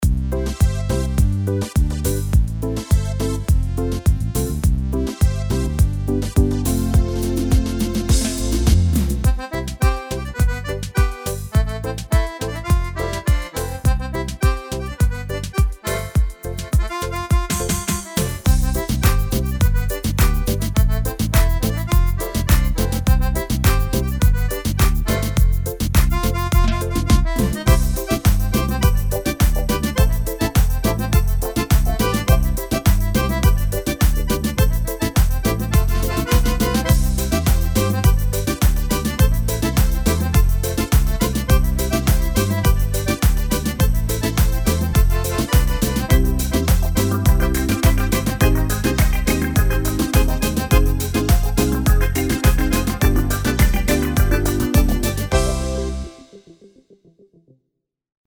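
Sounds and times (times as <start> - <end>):
kuduro music: 0.5 - 56.6.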